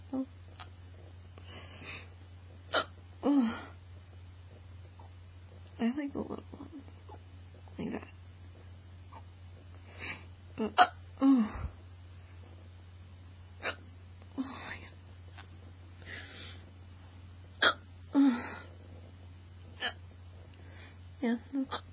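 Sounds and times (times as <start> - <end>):
low steady hum: 0.0 - 21.9
person hiccuping: 2.7 - 3.0, 10.6 - 11.0, 13.6 - 13.8, 17.6 - 17.9, 19.8 - 20.0, 21.6 - 21.9.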